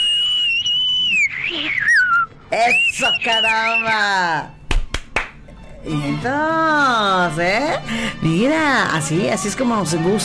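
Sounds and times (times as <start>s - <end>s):
person whistling a short tune: 0.0s - 4.0s
speech: 2.5s - 4.6s, 5.8s - 10.2s.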